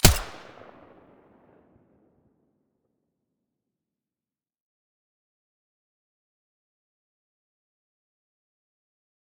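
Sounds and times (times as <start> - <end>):
silenced weapon gunshot: 0.0 - 1.3.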